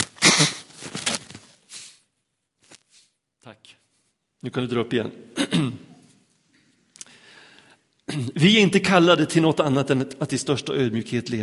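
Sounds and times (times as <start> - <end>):
person blowing nose: 0.0 - 0.8, 1.6 - 2.1
speech: 4.4 - 5.9, 8.2 - 11.4.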